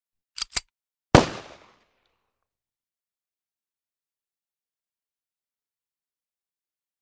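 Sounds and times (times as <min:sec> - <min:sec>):
Colt 45 pistol cocking: 0:00.4 - 0:00.6
Colt 45 pistol firing: 0:01.2 - 0:01.9.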